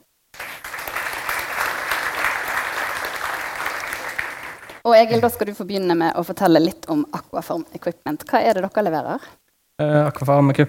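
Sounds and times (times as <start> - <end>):
audience clapping steadily: 0.4 - 4.8
speech: 4.9 - 10.6.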